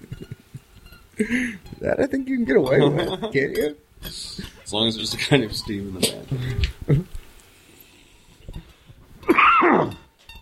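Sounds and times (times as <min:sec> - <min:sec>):
speech: 0:01.2 - 0:07.1
person coughing: 0:09.2 - 0:10.0.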